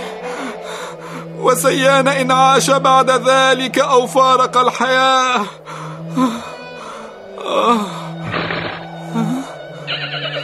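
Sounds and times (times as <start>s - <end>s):
speech: 1.4s - 5.6s, 6.2s - 6.4s
horse neighing in a desert: 8.2s - 9.0s, 9.9s - 10.4s.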